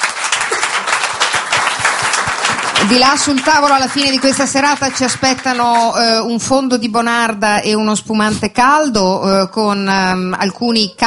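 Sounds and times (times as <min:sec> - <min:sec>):
audience applause at a live evening event: 0:00.0 - 0:06.0
speech: 0:02.8 - 0:11.0.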